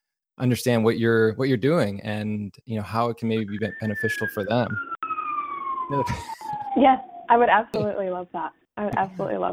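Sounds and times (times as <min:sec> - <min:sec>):
speech: 0:00.4 - 0:04.9, 0:05.9 - 0:09.5
emergency vehicle siren wailing: 0:03.4 - 0:07.4
laughter: 0:06.0 - 0:06.8.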